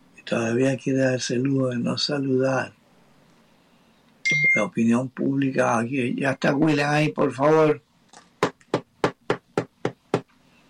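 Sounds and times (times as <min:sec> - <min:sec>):
speech: 0:00.3 - 0:02.8, 0:04.3 - 0:07.9
firm knocking on a door: 0:08.4 - 0:10.3.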